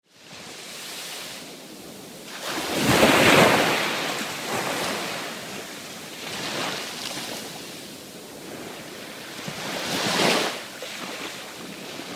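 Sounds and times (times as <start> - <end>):
waves of the Mediterranean Sea: 0.1 - 12.1.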